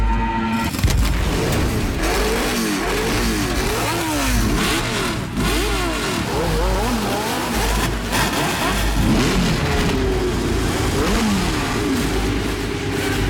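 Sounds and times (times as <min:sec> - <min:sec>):
Formula 1 race car engine revving at the German Grand Prix: 0:00.7 - 0:13.2.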